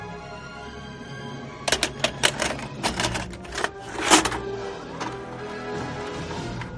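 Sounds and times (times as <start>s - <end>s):
VHS tape being pushed into a VHS player: 1.7s - 6.7s.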